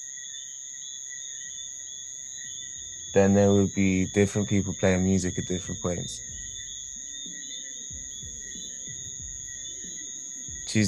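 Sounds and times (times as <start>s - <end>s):
crickets chirping at dusk in St. Lucia: 0.0s - 10.8s
faint low hum: 1.5s - 10.8s
speech: 3.1s - 6.4s.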